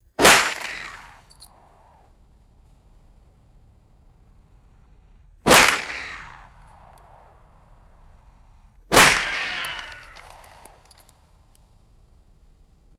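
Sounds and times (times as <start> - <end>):
revolver bullet ricochets: 0.2 - 2.2, 5.4 - 11.3
small caliber revolver firing outdoors: 0.2 - 11.0.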